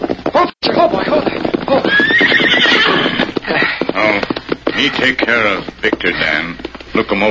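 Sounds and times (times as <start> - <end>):
horse hooves clip-clopping at a walking pace: 0.0 - 7.2
horse neighing: 0.8 - 6.5
speech: 5.0 - 7.2.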